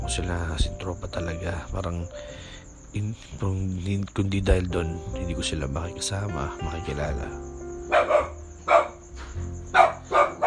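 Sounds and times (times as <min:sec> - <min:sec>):
speech: 0:00.1 - 0:07.5
dog barking: 0:07.9 - 0:09.0, 0:09.7 - 0:10.4.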